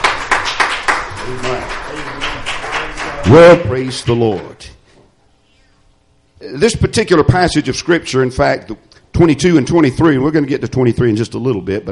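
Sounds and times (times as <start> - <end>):
audience clapping in praise: 0.0 - 4.7
speech: 3.2 - 4.8, 6.4 - 11.9.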